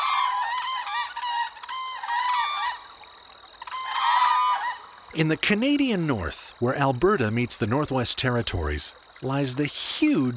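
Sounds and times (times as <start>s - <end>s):
whooping cranes calling in bugling trumpet notes: 0.0s - 2.9s, 3.6s - 4.9s
speech: 5.2s - 10.3s.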